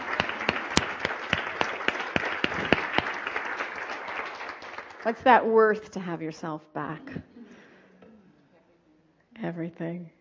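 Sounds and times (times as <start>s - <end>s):
sharp evenly spaced claps: 0.0s - 5.2s
audience applause: 0.0s - 5.3s
speech: 5.0s - 7.3s, 9.4s - 10.2s.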